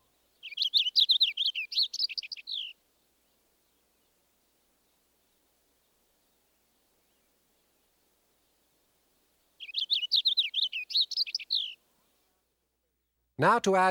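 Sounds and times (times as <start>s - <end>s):
purple finch singing clear warbling song: 0.0s - 2.8s, 9.6s - 11.8s
speech: 13.4s - 13.8s.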